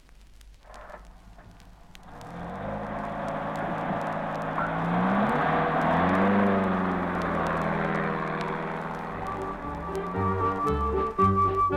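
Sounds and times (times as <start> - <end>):
car engine running: 1.5 - 10.7.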